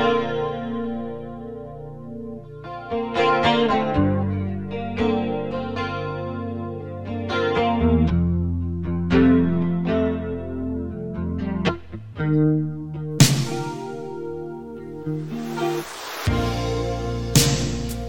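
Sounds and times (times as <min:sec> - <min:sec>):
clean chorus-drenched guitar chords of a rock ballad intro: 0:00.0 - 0:18.0
rock band playing: 0:13.2 - 0:14.3, 0:16.3 - 0:18.0.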